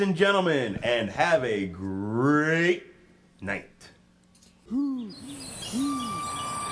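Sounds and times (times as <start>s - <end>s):
speech: 0.0s - 3.9s
owl hooting: 4.7s - 6.6s.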